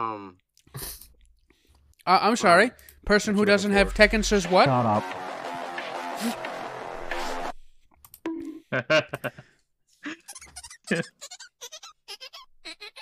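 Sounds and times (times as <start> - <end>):
speech: 2.1 - 5.4, 6.2 - 6.4, 8.8 - 9.4, 10.9 - 11.3
squeaky toy being squeezed: 10.3 - 12.9.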